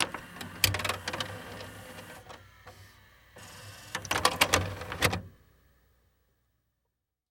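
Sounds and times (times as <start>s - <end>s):
electronic VHS player ejecting a tape: 0.0s - 5.4s.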